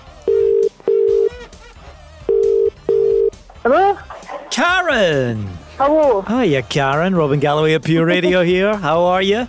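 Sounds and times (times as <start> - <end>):
telephone ringing tone while calling a listener: 0.2 - 1.4, 2.2 - 3.4
speech: 3.6 - 9.4.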